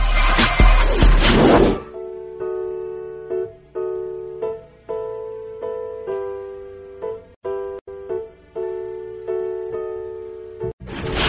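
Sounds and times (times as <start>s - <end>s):
noisy crash-like burst: 0.0s - 1.9s, 10.8s - 11.2s.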